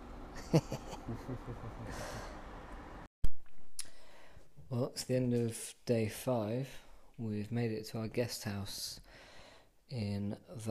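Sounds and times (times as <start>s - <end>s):
noise: 0.0s - 10.7s
speech: 0.5s - 2.5s, 4.7s - 9.3s, 9.9s - 10.7s
heavy breathing of a sleeping person: 1.8s - 2.4s, 3.8s - 4.6s, 9.0s - 9.8s.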